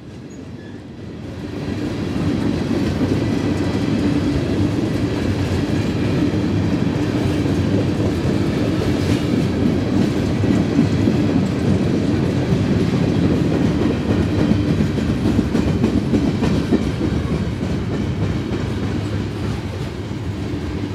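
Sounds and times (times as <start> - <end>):
long freight train rumbling past crossing a road: 0.0 - 20.9.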